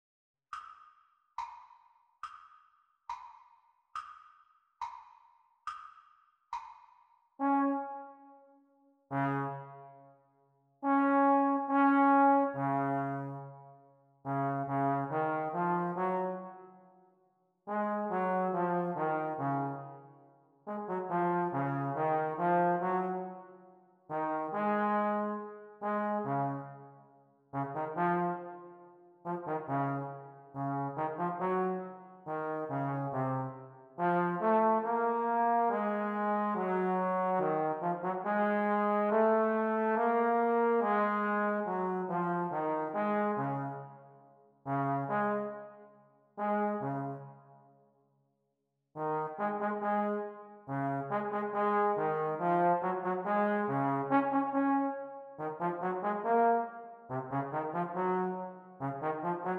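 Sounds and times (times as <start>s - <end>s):
E-flat horn playalong music for practice: 7.4s - 8.5s, 9.1s - 10.0s, 10.8s - 13.6s, 14.3s - 16.6s, 17.7s - 20.0s, 20.7s - 23.4s, 24.1s - 26.8s, 27.6s - 44.0s, 44.7s - 45.8s, 46.4s - 47.3s, 49.0s - 59.5s.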